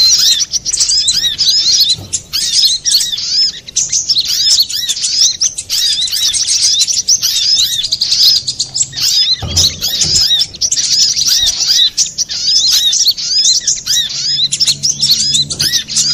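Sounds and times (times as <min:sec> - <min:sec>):
little spiderhunter song with rapid high-pitched chirps and whistled notes: 0:00.0 - 0:16.1
low thud: 0:09.3 - 0:11.5.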